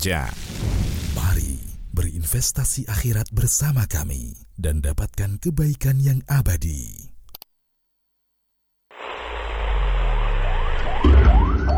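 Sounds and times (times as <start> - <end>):
speech: 0.0 - 0.7, 1.3 - 7.0
ambulance siren wailing in repeating rising sweeps: 10.0 - 11.7.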